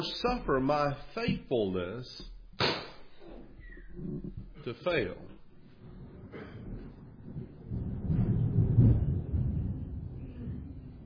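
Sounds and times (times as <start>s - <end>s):
speech: 0.0s - 2.8s, 4.0s - 5.3s
rolling thunder from a storm: 5.7s - 11.0s.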